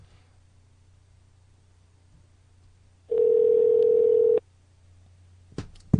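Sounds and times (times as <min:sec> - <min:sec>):
unanswered telephone call electronic ring tone: 0:03.1 - 0:04.4.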